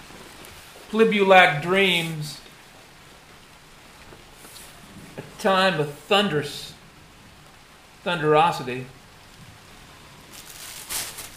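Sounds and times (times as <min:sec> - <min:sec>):
steady soft pitter-patter of rain: 0:00.0 - 0:11.3
speech: 0:00.9 - 0:02.4, 0:05.4 - 0:06.7, 0:08.0 - 0:09.0.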